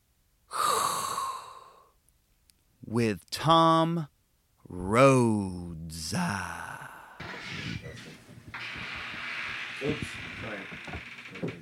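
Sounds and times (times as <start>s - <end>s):
long hot breathy inhale: 0.5s - 1.9s
speech: 2.9s - 4.1s, 4.7s - 8.7s, 9.8s - 11.6s.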